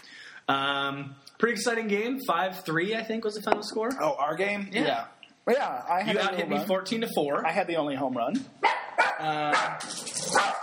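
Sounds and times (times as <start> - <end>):
speech: 0.5 - 10.6
pet dog barking with short sharp barks and whining: 8.6 - 10.6.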